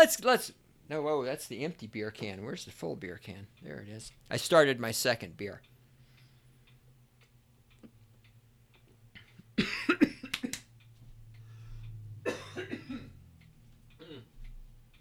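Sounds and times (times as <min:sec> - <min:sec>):
speech: 0:00.0 - 0:05.7
steady low hum: 0:00.0 - 0:14.9
person coughing into the microphone: 0:09.6 - 0:10.3, 0:12.3 - 0:13.1, 0:14.0 - 0:14.4.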